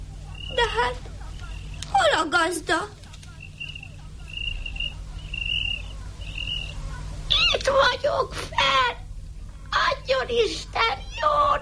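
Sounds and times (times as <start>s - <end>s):
low steady rumble: 0.0s - 11.6s
cricket chirping: 0.2s - 1.9s, 3.2s - 7.5s
speech: 0.6s - 1.1s, 2.2s - 3.0s, 7.6s - 9.0s, 10.1s - 11.6s.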